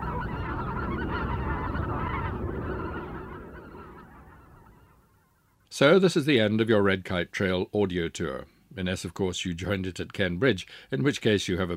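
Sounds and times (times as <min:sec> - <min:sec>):
large flock of white-fronted geese honking in winter: 0:00.0 - 0:05.5
speech: 0:05.8 - 0:11.7.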